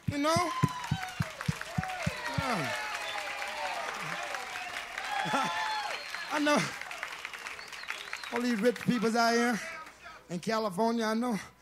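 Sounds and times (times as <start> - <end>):
large crowd applauding: 0.0 - 10.1
speech: 0.2 - 0.6, 2.5 - 2.8, 5.2 - 5.6, 6.3 - 6.8, 8.3 - 9.7, 10.3 - 11.5
crowd whistles: 0.2 - 9.0.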